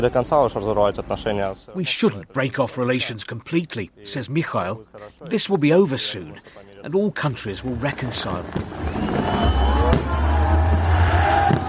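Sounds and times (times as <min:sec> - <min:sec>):
speech: 0:00.0 - 0:09.4
firework bangs: 0:08.4 - 0:11.6
large outdoor crowd cheering and shouting: 0:08.7 - 0:11.6.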